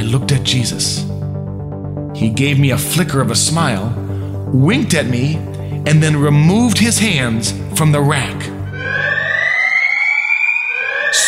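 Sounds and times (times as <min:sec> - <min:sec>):
speech: 0:00.1 - 0:01.2, 0:02.2 - 0:08.6
siren wailing: 0:08.5 - 0:11.2.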